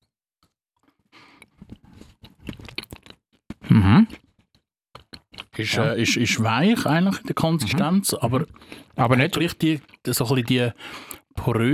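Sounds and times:
rhythmic chewing of crunchy food: 0.4s - 5.6s, 8.5s - 10.5s
biting into crunchy food: 1.4s - 5.6s
speech: 3.8s - 4.3s, 5.6s - 11.7s.

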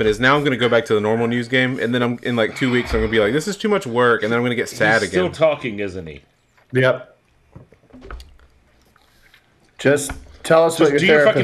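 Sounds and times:
speech: 0.0s - 8.2s, 9.8s - 11.4s
person sipping water: 7.8s - 9.6s.

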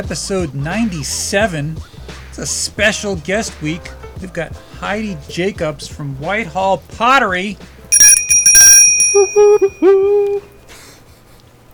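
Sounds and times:
speech: 0.0s - 7.8s, 9.2s - 10.5s
brass bell ringing: 7.9s - 10.0s
short vocal sounds: 9.7s - 10.5s.

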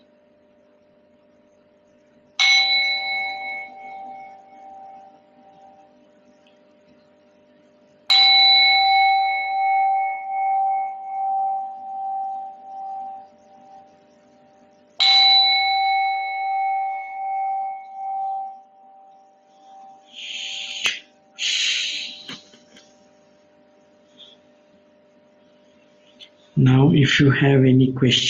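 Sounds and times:
meditation bell struck to end a meditation session: 2.4s - 5.9s, 8.1s - 20.3s
speech: 26.6s - 28.2s.

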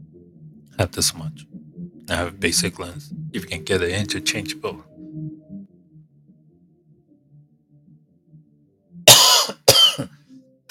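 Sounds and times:
speech: 0.8s - 4.9s
person coughing harshly: 9.1s - 10.6s.

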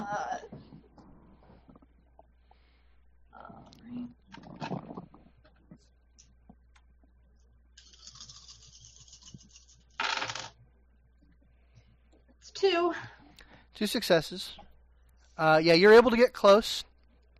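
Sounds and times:
dice dropped and clattering on floor: 10.0s - 10.6s
speech: 13.8s - 14.6s, 15.4s - 16.9s.

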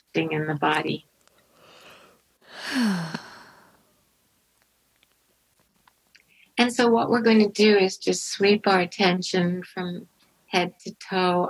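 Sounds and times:
speech: 0.2s - 1.1s, 6.7s - 11.4s
inhaled breath: 1.5s - 3.9s
person yawning: 2.5s - 3.7s.

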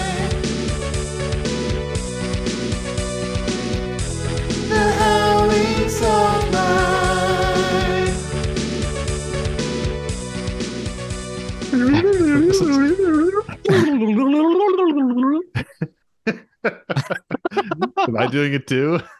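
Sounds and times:
short burst of music: 0.0s - 13.9s
laughter: 11.8s - 19.1s
speech: 18.2s - 19.1s.

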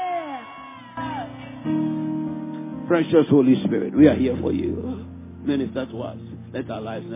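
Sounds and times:
audience shouting and whooping in response: 0.0s - 1.8s
speech: 2.9s - 7.1s.

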